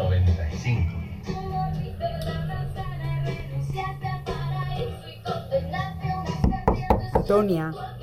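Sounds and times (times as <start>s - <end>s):
music playing: 0.0s - 8.0s
loud sharp knocks on a closed door: 6.4s - 7.5s
speech: 7.3s - 7.9s.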